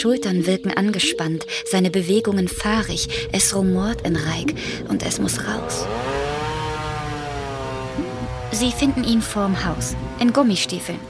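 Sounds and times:
speech: 0.0 - 6.3, 8.5 - 11.0
chainsaw cutting a huge piece of wood in front of a house: 5.6 - 11.0.

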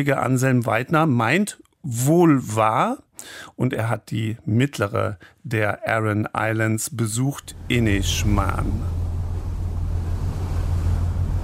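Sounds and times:
speech: 0.0 - 9.0
ferry engine drone departing a harbour in Ireland: 7.4 - 11.4
sea waves rushing in an Irish harbour: 7.4 - 11.4
wind in an Irish harbour: 7.4 - 11.4.

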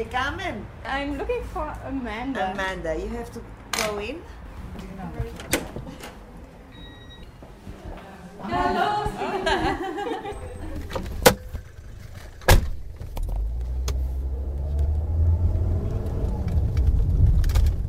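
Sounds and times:
speech: 0.0 - 5.6, 8.4 - 10.5
passengers laughing: 8.6 - 10.9
car engine starting: 10.3 - 17.8
low rumble of a car driving in Kifisia: 10.3 - 17.8
car doors slamming shut: 12.4 - 13.2.

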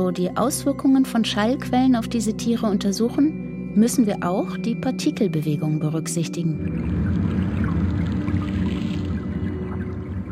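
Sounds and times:
speech: 0.0 - 7.4
underwater rumble of waves and currents: 6.6 - 10.3.

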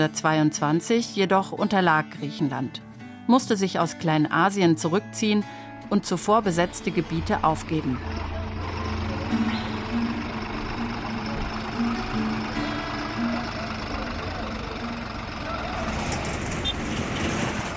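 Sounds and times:
speech: 0.0 - 8.3
diesel tractor engines chugging through town streets in Turgutlu, western Turkey: 5.5 - 17.7.

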